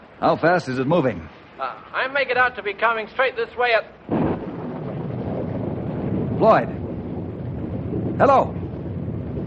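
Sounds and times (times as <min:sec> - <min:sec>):
speech: 0:00.2 - 0:04.2, 0:06.4 - 0:06.8, 0:08.2 - 0:08.6
thunder from a lightning strike during a storm: 0:04.0 - 0:09.4.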